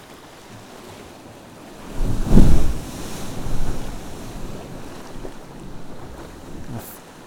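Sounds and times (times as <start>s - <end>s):
heavy ocean swell crashing into a sea cave: 0.3s - 7.2s
wind buffeting the microphone: 1.7s - 6.9s.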